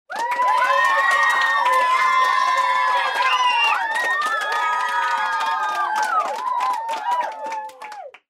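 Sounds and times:
approving applause: 0:00.0 - 0:08.2
children cheering: 0:00.1 - 0:08.1.

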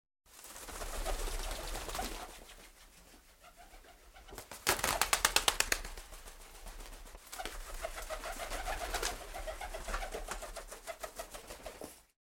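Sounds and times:
pigeons taking off and returning: 0:00.3 - 0:02.8, 0:03.4 - 0:12.1.

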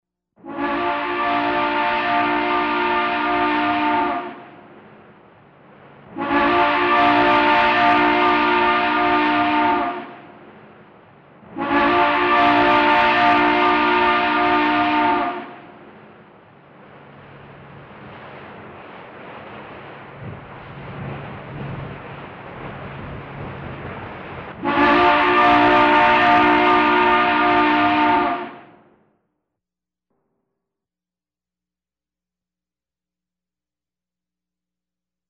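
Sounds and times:
steamship horn: 0:00.4 - 0:04.8, 0:06.0 - 0:10.6, 0:11.4 - 0:15.9, 0:20.3 - 0:28.9.

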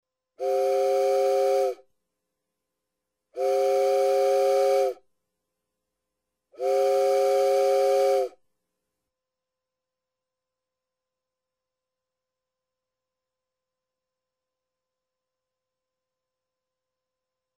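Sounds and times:
steamship horn: 0:00.4 - 0:01.8, 0:03.4 - 0:05.0, 0:06.6 - 0:08.4.

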